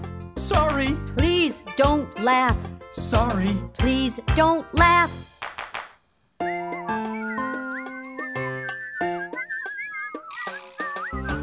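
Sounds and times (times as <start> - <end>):
speech: 0.5 - 5.3
melodic whistling in a bright tone: 6.4 - 11.4.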